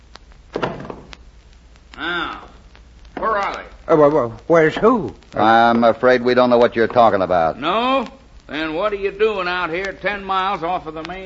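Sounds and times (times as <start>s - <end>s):
door slamming shut: 0.5s - 1.1s
speech: 2.0s - 2.5s, 3.4s - 11.2s.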